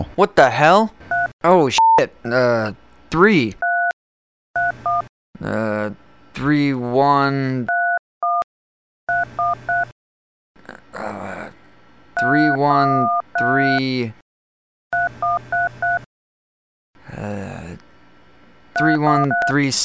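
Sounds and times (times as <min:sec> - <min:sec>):
man speaking agitatedly: 0:00.0 - 0:03.6, 0:12.2 - 0:14.2, 0:18.8 - 0:19.8
speech: 0:00.2 - 0:03.6, 0:05.4 - 0:07.8, 0:12.2 - 0:14.2, 0:17.1 - 0:17.8, 0:18.8 - 0:19.8
telephone keypad tones on an automated phone line: 0:01.1 - 0:02.0, 0:04.6 - 0:05.0, 0:09.1 - 0:09.9, 0:12.2 - 0:13.8, 0:15.0 - 0:16.1, 0:18.8 - 0:19.6.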